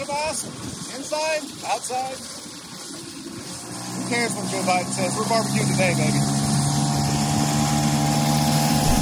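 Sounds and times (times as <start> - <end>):
speech: 0.4 - 2.4, 4.1 - 6.4
moped engine droning as the moped is ridden around in Florida: 3.6 - 9.0.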